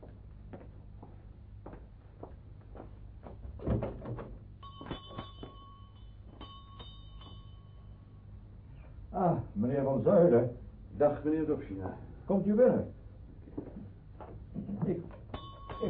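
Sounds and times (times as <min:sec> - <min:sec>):
shop door thump: 0:03.6 - 0:04.4
shop door clicks and knocks: 0:03.6 - 0:05.2
faint bright ringing tones: 0:04.5 - 0:09.0, 0:15.1 - 0:15.8
speech: 0:10.0 - 0:13.0.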